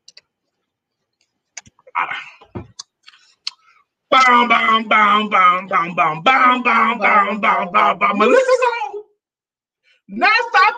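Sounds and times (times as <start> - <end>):
mouth clicks: 1.5 - 4.4
speech: 2.0 - 2.5, 4.3 - 8.8, 10.1 - 10.5.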